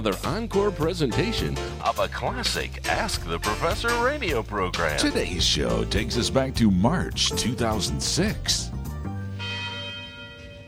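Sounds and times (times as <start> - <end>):
speech: 0.0 - 8.8
tower chimes ringing from a university bell tower: 9.2 - 10.6.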